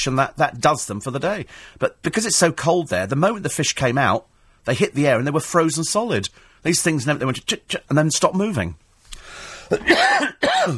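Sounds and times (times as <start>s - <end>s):
speech: 0.0s - 8.8s, 9.7s - 10.7s
faint hiss: 0.0s - 10.7s
harsh throaty coughs: 9.7s - 10.7s.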